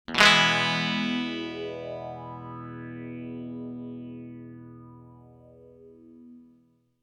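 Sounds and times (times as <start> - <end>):
slow psychedelic strumming: 0.1 - 6.6.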